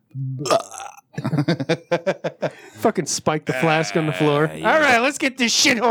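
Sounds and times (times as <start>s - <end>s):
speech: 0.2s - 0.7s, 1.4s - 2.2s, 2.8s - 5.8s
loud burp: 0.4s - 1.2s, 3.5s - 4.8s
laughter: 1.2s - 5.0s.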